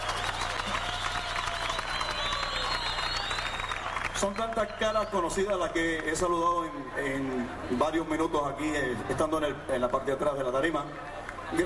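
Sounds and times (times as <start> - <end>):
large audience applauding: 0.0 - 6.5
whistles and cheers: 0.0 - 7.0
speech: 4.2 - 11.6.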